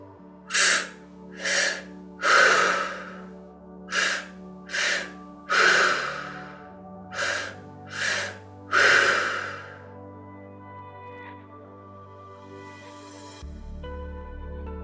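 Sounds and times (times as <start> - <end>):
soft sustained music: 0.0 - 14.8
deep breathing in and out: 0.5 - 10.0.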